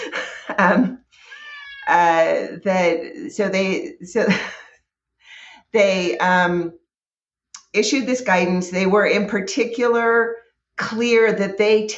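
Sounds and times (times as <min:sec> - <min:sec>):
speech: 0:00.6 - 0:01.0, 0:01.9 - 0:04.6, 0:05.7 - 0:06.8, 0:07.7 - 0:11.9
domestic cat meowing: 0:01.2 - 0:02.1.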